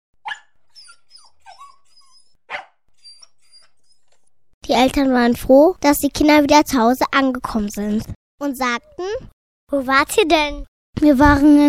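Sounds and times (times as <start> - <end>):
small dog barking: 0.2 - 0.5, 2.5 - 2.8
small dog whimpering and yipping: 0.2 - 4.3
speech: 4.7 - 11.6.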